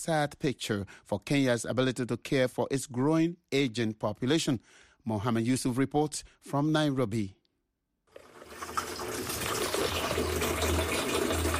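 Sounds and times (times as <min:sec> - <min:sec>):
speech: 0:00.0 - 0:07.4
tap water gushing into a container at a tap water kiosk: 0:08.1 - 0:11.5.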